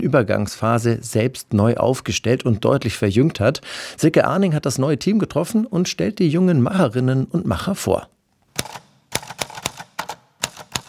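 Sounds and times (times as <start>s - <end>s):
speech: 0.0s - 8.8s
typewriter keys struck during an art-academy collective performance: 8.6s - 10.8s.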